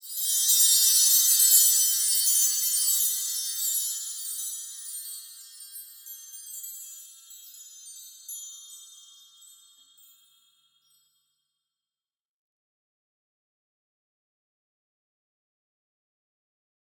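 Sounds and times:
Christmas chimes ringing: 0.0 - 11.0.

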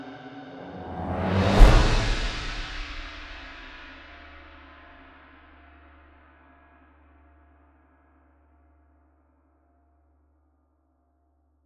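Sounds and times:
cinematic trailer transition music: 0.5 - 3.8.

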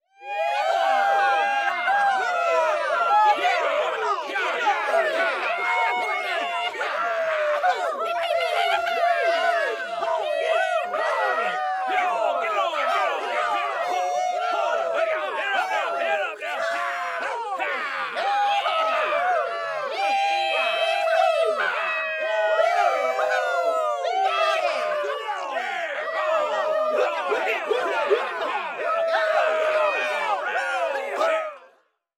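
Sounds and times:
crowd of cowboys: 0.0 - 32.1.

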